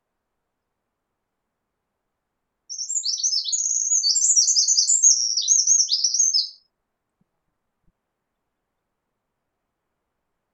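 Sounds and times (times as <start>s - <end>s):
Eurasian wren Troglodytes troglodytes song: 2.7s - 6.7s.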